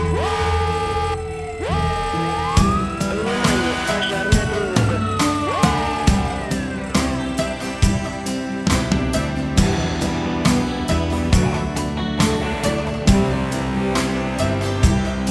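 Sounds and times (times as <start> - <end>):
fire alarm siren wailing: 0.0 - 7.1
pounding rhythmic beat: 0.0 - 15.2.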